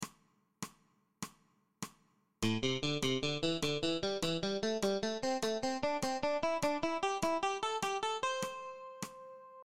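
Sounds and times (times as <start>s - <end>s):
muted ascending eighth note triplets: 2.4s - 9.1s.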